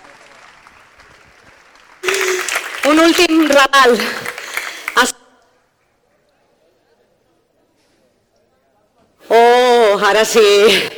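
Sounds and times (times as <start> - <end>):
crowd clapping: 0.0 - 5.2
speech: 2.9 - 4.2, 5.0 - 5.2, 10.0 - 10.9.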